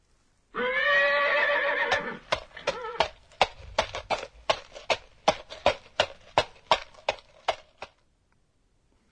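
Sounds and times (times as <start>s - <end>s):
horse whinnying: 0.5s - 3.2s
walking horse hooves clip-clopping: 1.9s - 8.0s.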